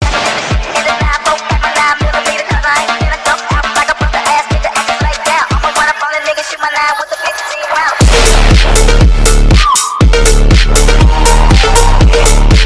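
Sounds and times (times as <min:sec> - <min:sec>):
ringtone music: 0:00.0 - 0:12.6.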